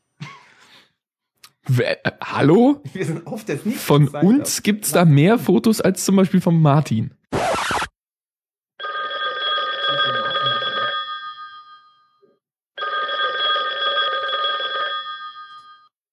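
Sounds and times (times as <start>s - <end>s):
speech: 1.7s - 7.2s
telephone ringing with an incoming call: 8.8s - 12.2s, 12.8s - 16.0s.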